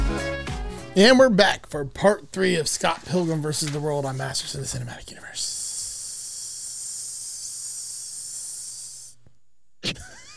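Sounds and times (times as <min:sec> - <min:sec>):
speech: 0:01.0 - 0:05.6
hiss of escaping air: 0:05.4 - 0:09.2.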